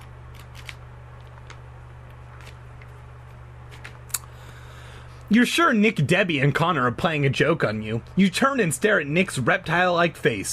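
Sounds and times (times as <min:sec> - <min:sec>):
book page being turned: 0:00.0 - 0:04.1
steady low electrical hum: 0:00.0 - 0:10.5
speech: 0:05.3 - 0:10.5.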